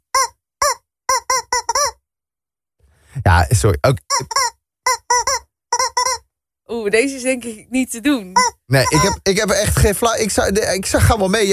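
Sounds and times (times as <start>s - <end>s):
rubber chicken toy squeaking a tune: 0.0s - 2.0s, 4.0s - 6.3s, 8.3s - 9.3s
speech: 3.2s - 5.0s, 6.8s - 11.5s.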